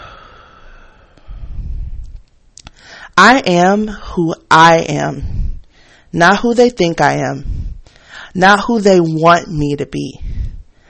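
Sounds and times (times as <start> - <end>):
deep breath in and out during an affirmation exercise: 0.0 - 2.2, 2.8 - 3.2, 5.2 - 6.1, 7.4 - 8.4, 10.2 - 10.8
speech: 3.2 - 5.4, 6.1 - 7.6, 8.4 - 10.2.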